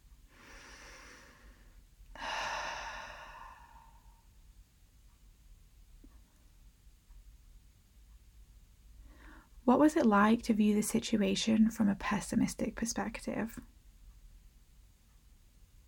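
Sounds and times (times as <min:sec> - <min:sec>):
deep slow breath during a guided relaxation exercise: 0:00.3 - 0:04.3, 0:09.0 - 0:09.6
speech: 0:09.7 - 0:13.8.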